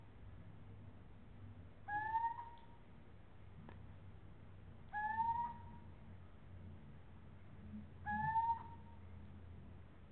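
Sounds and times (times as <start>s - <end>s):
low steady hum: 0.0s - 10.1s
little owl rising whistled hoots: 1.9s - 2.6s, 5.0s - 5.6s, 8.1s - 8.8s.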